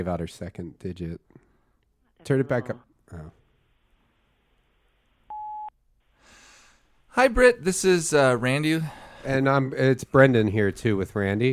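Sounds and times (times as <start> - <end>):
speech: 0.0 - 1.4, 2.2 - 3.4, 7.2 - 11.5
voicemail system beep tone: 5.3 - 5.7.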